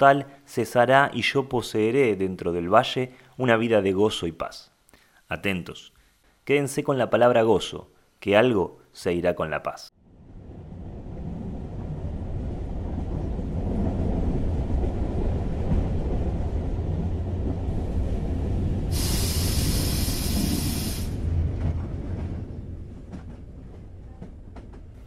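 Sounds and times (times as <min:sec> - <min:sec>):
speech: 0:00.0 - 0:04.7, 0:05.3 - 0:09.9
train braking as it arrives at a stop, rail cars rumbling and rattling: 0:12.8 - 0:25.0
loud high hiss from a braking train: 0:18.9 - 0:21.3.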